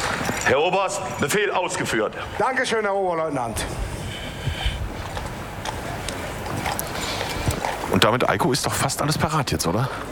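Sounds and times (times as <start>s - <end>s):
speech: 0.5s - 3.9s, 8.0s - 10.1s
horse hooves clip-clopping at a regiment parade: 4.8s - 8.0s.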